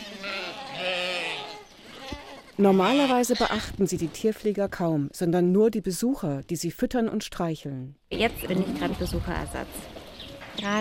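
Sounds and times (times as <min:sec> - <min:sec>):
sheep and goats bleating in a petting zoo: 0:00.0 - 0:03.8
speech: 0:02.6 - 0:10.0, 0:10.6 - 0:10.7.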